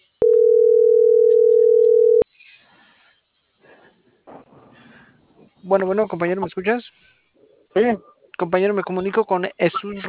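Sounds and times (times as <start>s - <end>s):
telephone dial tone while placing a call: 0.2s - 2.2s
speech: 5.7s - 10.0s.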